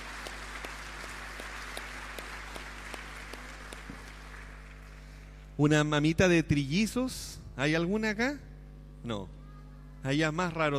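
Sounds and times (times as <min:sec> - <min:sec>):
audience applauding: 0:00.0 - 0:05.2
speech: 0:05.6 - 0:09.4, 0:10.0 - 0:10.7.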